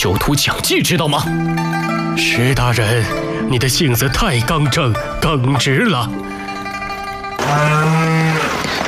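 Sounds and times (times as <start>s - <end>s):
speech: 0.0s - 6.4s, 7.5s - 8.2s
calf mooing: 7.4s - 8.7s.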